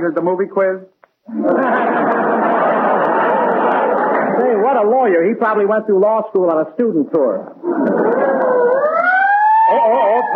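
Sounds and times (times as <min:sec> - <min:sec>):
speech: 0:00.0 - 0:02.7, 0:04.3 - 0:08.0
laughter: 0:01.3 - 0:04.6, 0:07.6 - 0:08.8, 0:09.6 - 0:10.3
ambulance siren passing: 0:07.7 - 0:10.3.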